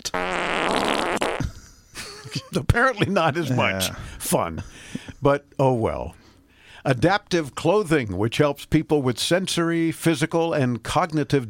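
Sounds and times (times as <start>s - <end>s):
speech: 0.0s - 0.4s, 2.6s - 6.2s, 6.8s - 11.4s
loud, drawn-out car novelty fart sound effect with sputtering bursts: 0.0s - 1.6s
laughter: 1.4s - 4.7s.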